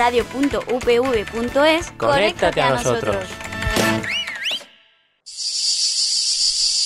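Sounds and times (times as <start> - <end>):
speech: 0.0 - 4.2
bird-like warbling chirps: 4.0 - 6.8
cicada buzzing: 5.3 - 6.8.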